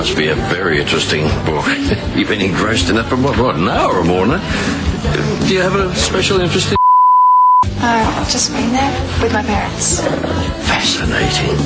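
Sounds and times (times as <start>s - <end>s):
speech: 0.0s - 6.8s, 7.8s - 11.6s
short steady electronic censor bleep: 6.8s - 7.7s.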